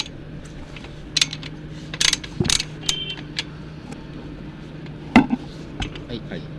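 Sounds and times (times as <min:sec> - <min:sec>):
mechanical clatter: 0:00.0 - 0:03.5
hand tool ratcheting clicks tightening a fastener: 0:01.2 - 0:03.5.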